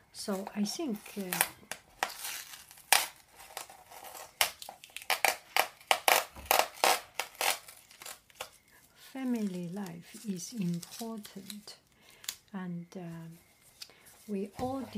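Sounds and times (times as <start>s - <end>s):
speech: 0.2s - 1.6s, 9.2s - 11.8s, 12.5s - 13.5s, 14.3s - 14.9s
scissors cutting open packaging of a tea parcel: 0.9s - 8.6s, 9.2s - 12.4s.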